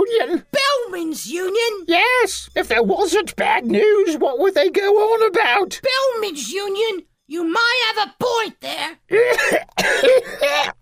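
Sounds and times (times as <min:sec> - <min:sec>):
speech: 0:01.2 - 0:10.7
person with the sniffles coughing: 0:09.1 - 0:10.7.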